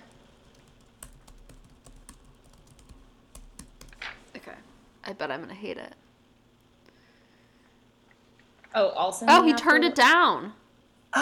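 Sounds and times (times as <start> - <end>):
typing on a computer keyboard: 0.0 - 4.3
speech: 5.1 - 6.0, 8.8 - 11.1.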